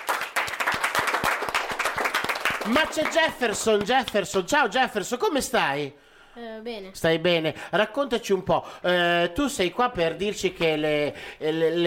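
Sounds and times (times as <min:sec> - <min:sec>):
audience applause: 0:00.0 - 0:04.0
speech: 0:02.6 - 0:11.8.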